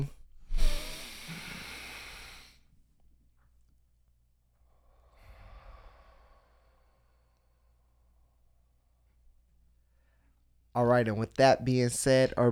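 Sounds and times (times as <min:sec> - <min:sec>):
group taking a deep breath in through the nose and out of the mouth: 0:00.5 - 0:02.8, 0:04.6 - 0:10.5
speech: 0:10.8 - 0:12.5.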